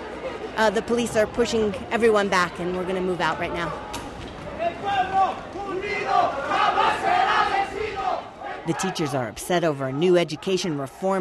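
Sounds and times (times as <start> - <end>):
speech: 0.6 - 4.0, 8.7 - 11.1
large angry crowd of protesters yelling profanities at police: 3.7 - 10.8.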